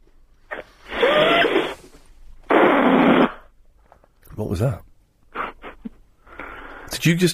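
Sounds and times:
balloon squealing while being played with: 0:00.5 - 0:03.5
speech: 0:04.4 - 0:04.8, 0:07.0 - 0:07.3.

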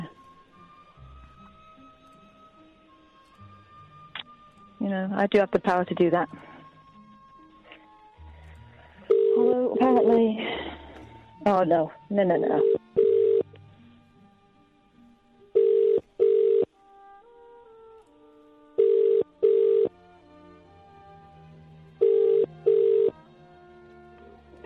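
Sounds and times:
speech: 0:04.9 - 0:06.5, 0:11.4 - 0:12.8
telephone line sounds: 0:09.1 - 0:09.9, 0:12.6 - 0:13.4, 0:15.6 - 0:16.7, 0:18.8 - 0:19.9, 0:22.0 - 0:23.1.

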